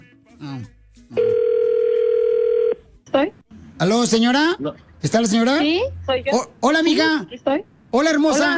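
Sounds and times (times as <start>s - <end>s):
telephone dial tone as an outgoing call is placed: 1.2s - 2.8s
speech: 3.9s - 8.5s.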